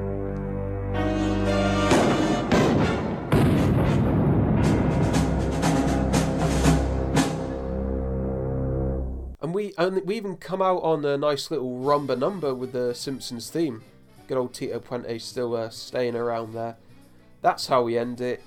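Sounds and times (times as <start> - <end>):
steady low rumbling drone: 0.0 - 9.4
rapid loud gunshots in uneven bursts: 1.9 - 5.7
speech: 9.8 - 16.8, 17.4 - 18.4.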